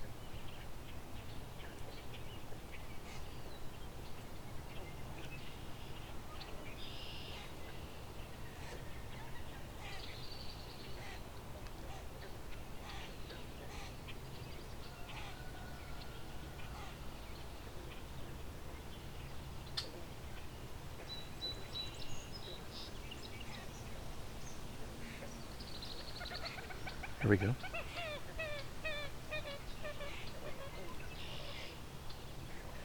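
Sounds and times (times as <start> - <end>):
steady outdoor noise: 0.0 - 32.8
common gallinule giving clucking chattering calls: 26.2 - 31.8.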